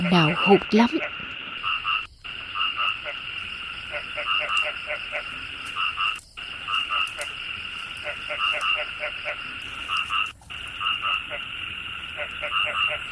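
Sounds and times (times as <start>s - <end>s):
chorus of frogs croaking with pulsing trills: 0.0s - 13.1s
speech: 0.1s - 1.1s.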